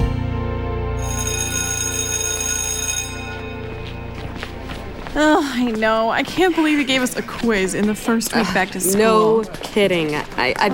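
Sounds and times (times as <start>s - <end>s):
loud electric school bell ringing: 1.0s - 6.6s
speech: 5.2s - 10.7s.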